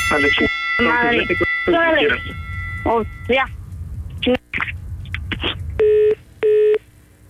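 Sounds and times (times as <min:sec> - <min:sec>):
speech: 0:00.1 - 0:03.6, 0:04.3 - 0:04.7
telephone tone beeps while a call is being made: 0:05.8 - 0:06.8.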